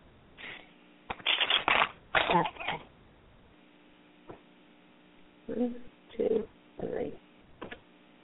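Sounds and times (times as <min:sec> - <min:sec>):
tarot cards being shuffled: 0:01.1 - 0:02.8.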